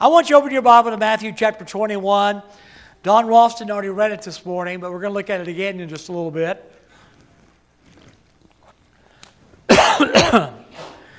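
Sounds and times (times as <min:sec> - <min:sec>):
speech: 0:00.0 - 0:06.8
softer breathy exhale: 0:02.5 - 0:03.0, 0:10.7 - 0:11.1
person coughing in harsh raspy spasms: 0:09.7 - 0:11.1.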